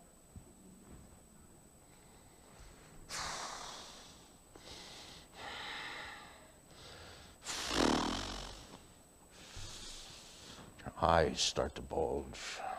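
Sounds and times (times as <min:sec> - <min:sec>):
person breathing hard and snorting in anger: 0:03.1 - 0:08.8
speech: 0:11.0 - 0:12.7.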